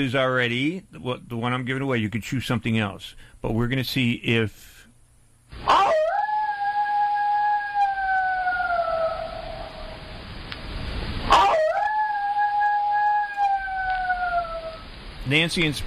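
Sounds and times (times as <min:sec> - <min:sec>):
speech: 0:00.0 - 0:04.8, 0:05.5 - 0:06.0, 0:15.3 - 0:15.8
wolf howling: 0:05.6 - 0:10.2, 0:11.3 - 0:15.0.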